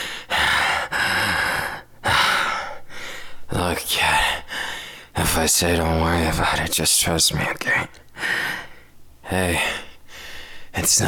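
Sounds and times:
heavy labored breathing of someone winded after flying: 0.0s - 3.5s, 4.2s - 5.2s, 8.1s - 9.0s, 9.6s - 10.8s
speech: 3.6s - 4.3s, 5.3s - 8.4s, 9.3s - 9.8s, 10.8s - 11.0s.

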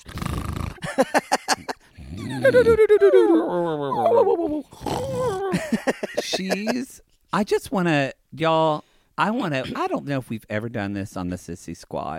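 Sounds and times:
laughter: 0.8s - 4.7s, 5.3s - 7.0s
speech: 1.0s - 1.3s, 2.4s - 4.6s, 5.7s - 12.1s
person imitating a drunk whimpering dog: 2.0s - 5.6s.

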